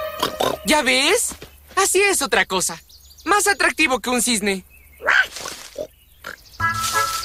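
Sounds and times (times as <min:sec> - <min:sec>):
wild boar grunting and snorting: 0:00.2 - 0:00.7, 0:05.0 - 0:07.1
speech: 0:00.7 - 0:04.7.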